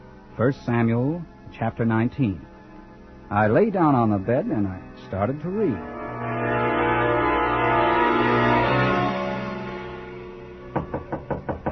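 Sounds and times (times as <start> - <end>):
sustained droning musical tones: 0.0 - 11.1
speech: 0.4 - 2.5, 3.3 - 6.6
knocks on a hotel room door: 10.7 - 11.7.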